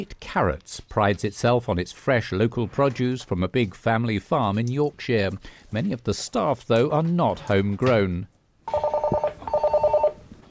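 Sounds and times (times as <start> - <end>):
speech: 0.0 - 8.9
telephone ringing in a farm office in Yorkshire England: 8.7 - 10.2.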